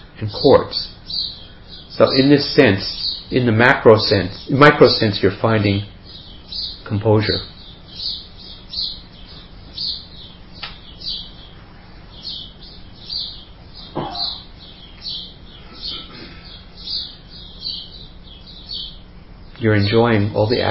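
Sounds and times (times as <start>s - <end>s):
birds chirping and singing: 0.0s - 20.6s
speech: 0.2s - 1.4s, 2.0s - 6.0s, 6.9s - 7.5s, 19.6s - 20.6s
sharp snaps: 10.5s - 10.9s.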